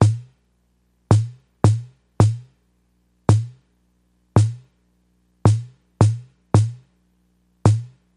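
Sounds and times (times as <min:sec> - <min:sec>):
ambient house kick drum: 0:00.0 - 0:00.4, 0:01.1 - 0:02.6, 0:03.3 - 0:03.6, 0:04.4 - 0:04.7, 0:05.5 - 0:06.9, 0:07.7 - 0:08.0.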